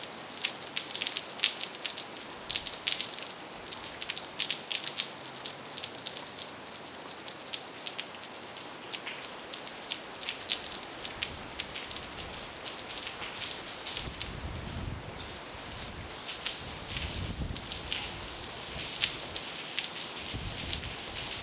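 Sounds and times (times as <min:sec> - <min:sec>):
rain falling on the ground: 0:00.0 - 0:21.4
low gusts of wind: 0:10.5 - 0:21.4.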